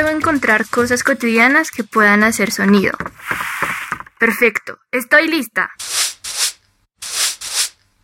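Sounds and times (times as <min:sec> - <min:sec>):
speech: 0:00.0 - 0:03.5, 0:04.2 - 0:06.0
broom sweeping across a hard floor: 0:03.2 - 0:04.0, 0:05.8 - 0:07.8.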